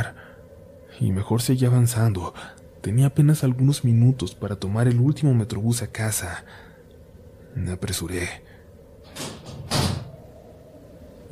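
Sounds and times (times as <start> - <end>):
quiet low rumble of noise: 0.0 - 11.3
speech: 1.0 - 6.7, 7.6 - 8.5
door sliding and banging shut: 9.0 - 10.2.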